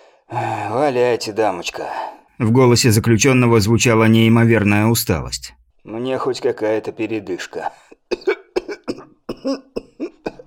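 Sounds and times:
speech: 0:00.3 - 0:07.9, 0:09.4 - 0:09.7
man coughing distorted through loudspeakers: 0:08.1 - 0:10.4.

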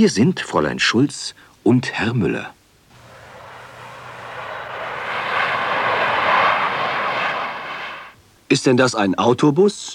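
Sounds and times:
speech: 0:00.0 - 0:02.6, 0:08.5 - 0:09.9
airplane in flight engine drone: 0:02.9 - 0:08.2.

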